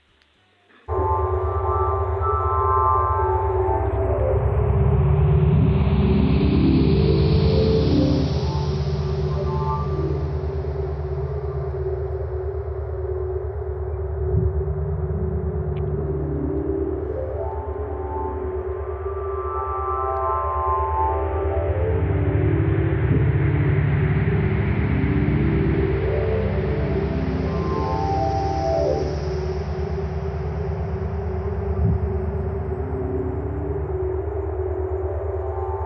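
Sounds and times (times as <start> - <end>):
layered humming tones: 0.7 - 35.8
loud sustained electronic drone from Chandra data sonification: 0.7 - 35.8.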